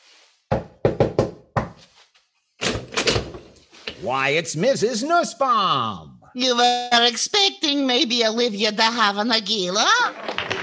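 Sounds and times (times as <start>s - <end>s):
sharp knocks on a wooden door: 0.5s - 1.8s
speech: 4.0s - 10.2s.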